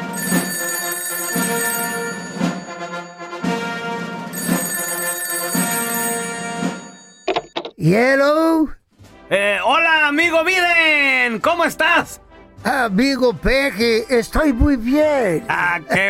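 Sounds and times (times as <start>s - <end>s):
telephone bell ringing: 0.1s - 3.5s, 4.3s - 7.4s
speech: 7.9s - 16.0s.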